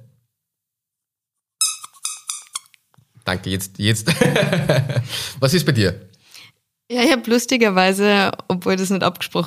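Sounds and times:
rubber squeaky duck being squeezed: 0:01.6 - 0:02.8
speech: 0:03.3 - 0:06.1, 0:06.9 - 0:09.4
laughter: 0:04.1 - 0:05.4.

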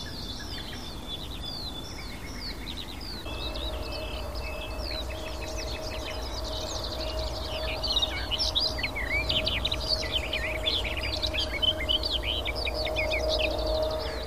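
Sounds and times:
wild Barred Warbler singing: 0:00.0 - 0:14.2
low steady hum: 0:03.2 - 0:14.2.

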